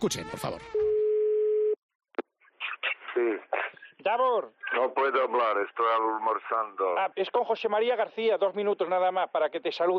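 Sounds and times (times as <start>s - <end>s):
speech: 0.0s - 0.9s, 3.2s - 9.9s
telephone line tone at the start of a phone call: 0.7s - 1.8s.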